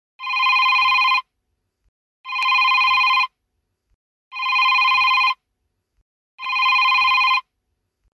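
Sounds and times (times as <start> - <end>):
phone bell ringtone: 0.2 - 1.2, 2.3 - 3.3, 4.3 - 5.4, 6.4 - 7.5.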